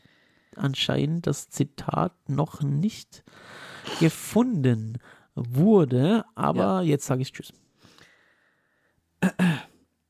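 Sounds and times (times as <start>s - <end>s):
speech: 0.6s - 7.6s
man clearing his throat: 3.8s - 4.3s, 9.2s - 9.9s.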